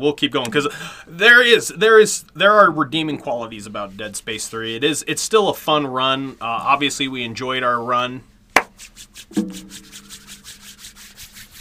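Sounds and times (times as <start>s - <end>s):
speech: 0.0s - 9.9s
hands rubbed briskly together: 8.6s - 11.6s
sharp tap: 9.3s - 9.8s.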